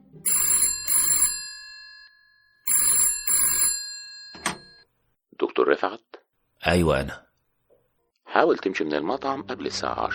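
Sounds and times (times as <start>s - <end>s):
telephone bell ringing: 0.2s - 4.9s
speech: 5.6s - 7.2s, 8.4s - 10.1s.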